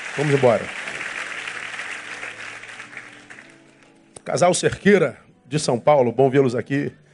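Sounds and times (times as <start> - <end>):
audience applauding: 0.0 - 3.7
speech: 0.2 - 0.8, 4.3 - 7.0.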